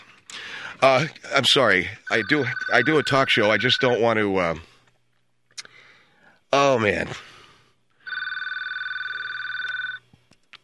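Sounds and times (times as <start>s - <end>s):
speech: 0.7s - 4.7s, 6.5s - 7.3s
electronic telephone ring with a rapidly warbling tone: 2.1s - 4.1s, 8.0s - 10.0s.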